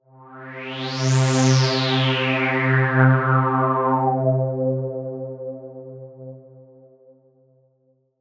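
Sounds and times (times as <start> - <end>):
synth with filter envelope: 0.6 - 7.1.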